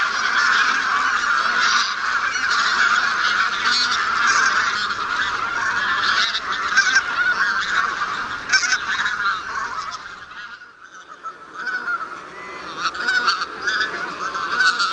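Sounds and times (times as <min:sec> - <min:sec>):
Bean goose flock calling with nasal honks: 0:00.0 - 0:14.9.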